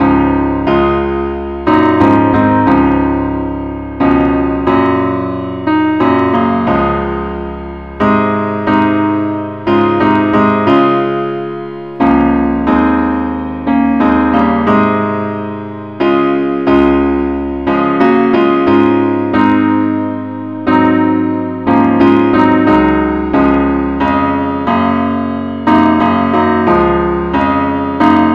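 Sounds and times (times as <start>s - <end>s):
musical parts in the key of D flat: 0.0s - 28.3s.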